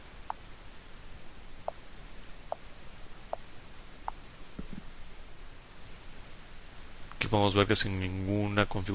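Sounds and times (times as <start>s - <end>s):
faint steady hiss: 0.0s - 8.9s
computer mouse clicks operating an emulated touch keyboard: 0.2s - 0.5s, 3.3s - 4.7s
speech: 7.3s - 8.9s.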